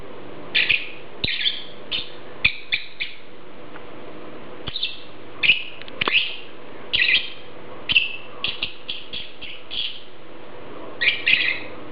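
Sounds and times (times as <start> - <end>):
lovebird Agapornis harsh squeaky chirps: 0.5 - 3.2, 4.7 - 10.1, 11.0 - 11.7.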